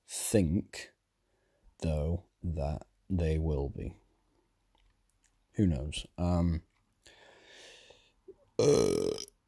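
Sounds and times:
speech: 0.3 - 0.9, 1.8 - 4.0, 5.6 - 6.7, 8.6 - 9.3
person burping: 8.6 - 9.4.

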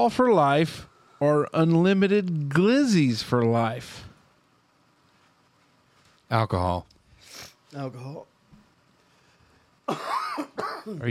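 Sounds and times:
speech: 0.0 - 4.1, 6.3 - 6.9, 7.7 - 8.3, 9.9 - 11.0
loud harsh breathy cough into a microphone: 9.9 - 11.0.

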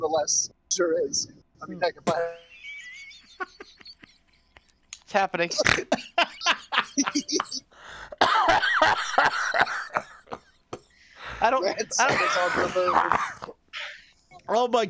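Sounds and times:
speech: 0.0 - 2.5, 3.4 - 3.8, 5.1 - 7.6, 11.4 - 13.6, 14.4 - 14.8
hard coughing fit: 2.1 - 2.5, 5.6 - 10.5, 11.2 - 14.0
throat clearing: 2.1 - 2.5, 5.6 - 14.0
laughing voices: 2.1 - 4.8, 5.5 - 10.4, 11.2 - 14.4.

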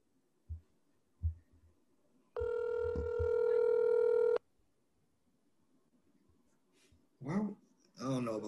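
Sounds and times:
soft low taps of phone dialing: 0.5 - 1.6
steady buzzy phone ringing tone: 2.4 - 4.4.

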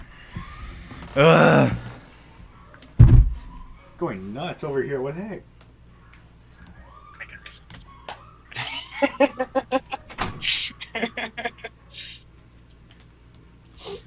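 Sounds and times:
speech: 1.2 - 1.8, 4.0 - 5.5, 9.0 - 9.8
door shut with a solid low thud: 3.0 - 3.5, 10.1 - 10.5
laughter: 8.5 - 12.2.

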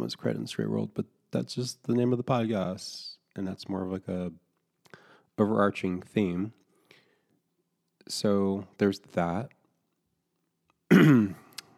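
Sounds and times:
speech: 0.0 - 4.4, 5.4 - 6.6, 8.1 - 9.6, 10.9 - 11.4
throat clearing: 10.9 - 11.6.

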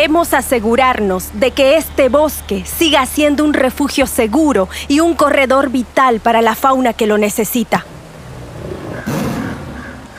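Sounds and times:
speech: 0.0 - 7.9
steady rumble of noise in the Chiquitanía forest: 0.0 - 10.1
jaguar deep raspy roar in the Chiquitanía forest: 8.0 - 10.1.

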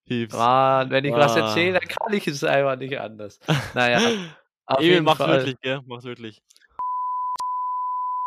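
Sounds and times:
speech: 0.1 - 6.6
laughter: 1.1 - 1.9, 3.5 - 5.6
long steady censor bleep tone: 6.8 - 8.2.

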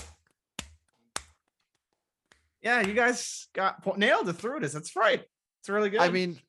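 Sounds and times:
sharp hand claps: 0.0 - 3.2
speech: 2.6 - 6.4.

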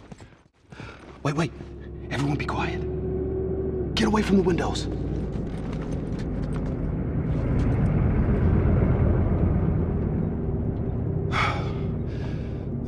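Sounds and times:
speech: 1.2 - 2.9, 4.0 - 5.1
heavy truck driving past outside: 1.5 - 12.8.

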